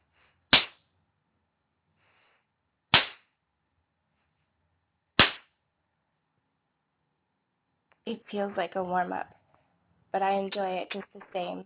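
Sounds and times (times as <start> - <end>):
sharp spanking slaps: 0.5 - 0.8, 2.9 - 3.3, 5.2 - 5.6
speech: 8.1 - 9.4, 10.1 - 11.6.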